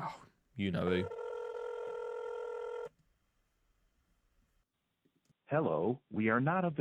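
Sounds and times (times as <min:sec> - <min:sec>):
speech: 0:00.0 - 0:01.2, 0:05.5 - 0:06.7
telephone ringing with bright electronic tones: 0:00.8 - 0:02.9.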